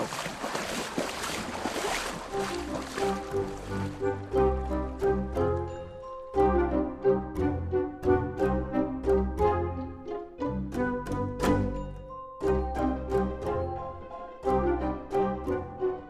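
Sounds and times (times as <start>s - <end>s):
rushing river water splashing during a river crossing: 0.0s - 5.9s
rhythmic musical passage with plucked bell-like notes: 2.9s - 16.0s.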